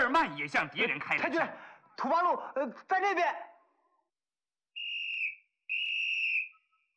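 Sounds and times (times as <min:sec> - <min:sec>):
speech: 0:00.1 - 0:03.5
shrill whistle blasts: 0:04.7 - 0:06.9.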